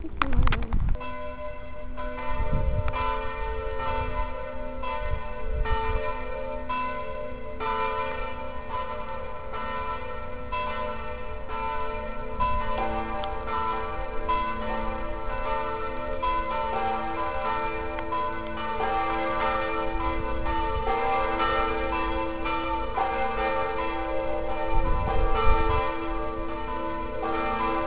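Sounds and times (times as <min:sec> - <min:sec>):
bells: 0:00.0 - 0:27.8.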